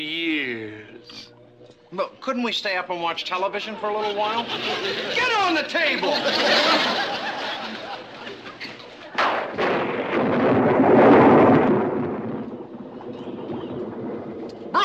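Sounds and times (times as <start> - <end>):
speech: 1.9 - 7.2
laughter: 3.4 - 9.2
loud thunderclap and rolling rumble from a storm: 9.2 - 14.8
steady noise like heavy rain or wind: 10.2 - 14.8.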